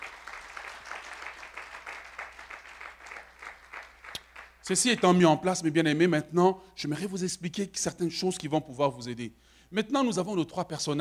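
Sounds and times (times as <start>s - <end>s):
church congregation applauding during a service: 0.0s - 5.2s
speech: 4.7s - 10.9s.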